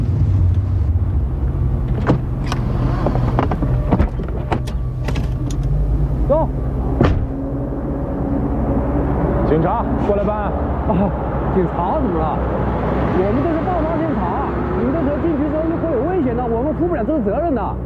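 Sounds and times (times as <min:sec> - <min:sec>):
car pulling over to the roadside and stopping at the foot of a mountain: 0:00.0 - 0:17.8
sharp clicks and thumps: 0:01.8 - 0:05.8.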